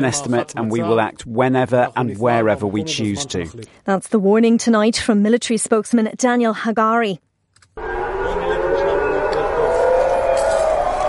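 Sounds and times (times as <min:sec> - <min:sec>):
speech: 0:00.0 - 0:07.3
air raid siren wailing: 0:07.8 - 0:11.0
crowd noise: 0:07.8 - 0:11.0.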